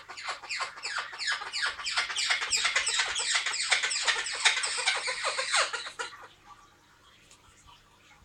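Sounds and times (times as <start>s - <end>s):
Blue-headed parrot Pionus menstruus giving raspy descending screeches: 0.0s - 6.2s.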